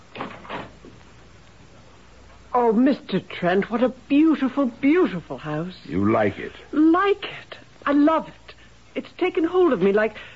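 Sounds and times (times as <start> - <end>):
door opening: 0.1 - 1.0
speech: 2.6 - 8.4, 9.0 - 10.3.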